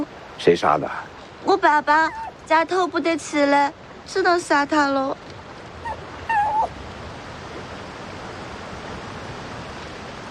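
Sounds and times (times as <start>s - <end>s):
soft steady hiss: 0.0s - 10.3s
speech: 0.4s - 5.3s
puppy whimpering: 2.0s - 2.4s, 5.8s - 6.7s.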